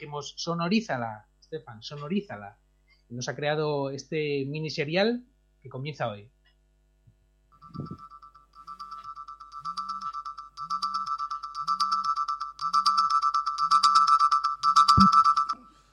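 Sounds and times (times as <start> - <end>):
speech: 0.0 - 6.4, 7.7 - 8.1
alarm clock ringtone from a mobile phone: 7.6 - 15.9.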